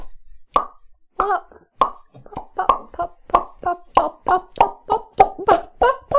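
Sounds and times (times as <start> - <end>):
voice imitating popping, snapping and crackling with short mouth pops: 0.5 - 6.1.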